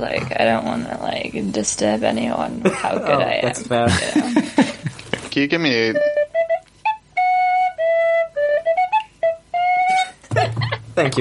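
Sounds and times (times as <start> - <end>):
speech: 0.0 - 4.8, 5.4 - 6.1, 11.0 - 11.2
laughter: 2.6 - 5.3
short melody played on a tin whistle: 5.8 - 10.3.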